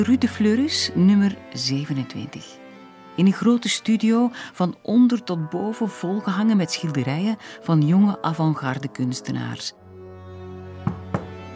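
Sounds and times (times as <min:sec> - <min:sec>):
speech: 0:00.0 - 0:02.6, 0:03.2 - 0:09.8
knocking on a door: 0:10.8 - 0:11.4.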